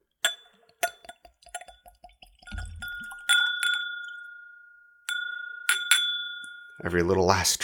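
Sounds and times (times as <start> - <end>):
sharp glassy clinks: 0.2 - 7.0
liquor poured into a Glencairn glass: 0.7 - 4.8
speech: 6.8 - 7.6.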